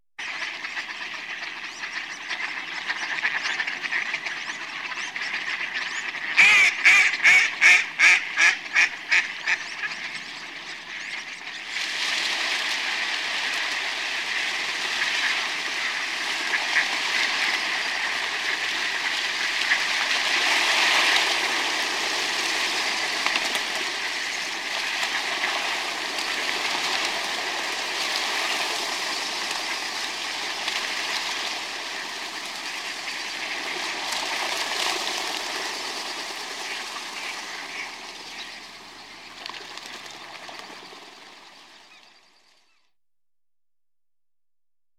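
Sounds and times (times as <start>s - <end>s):
flock of fowl: 0.2s - 42.1s.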